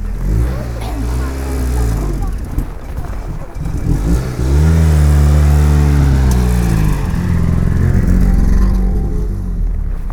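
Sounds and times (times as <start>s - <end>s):
old car engine starting and revving: 0.0s - 10.1s.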